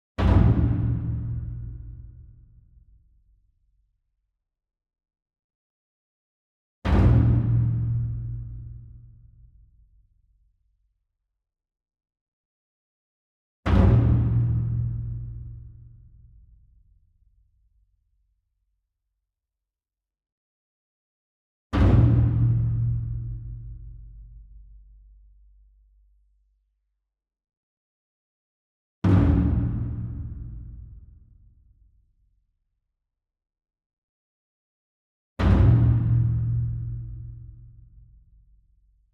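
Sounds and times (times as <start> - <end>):
taiko drum ensemble flam: 0.2 - 2.0, 6.9 - 8.7, 13.7 - 15.5, 21.8 - 23.9, 29.0 - 30.8, 35.4 - 37.4.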